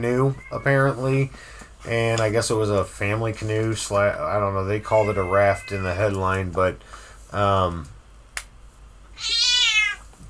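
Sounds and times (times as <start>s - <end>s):
speech: 0.0s - 8.0s
cat meowing: 0.3s - 0.7s, 4.9s - 6.1s, 9.1s - 10.1s.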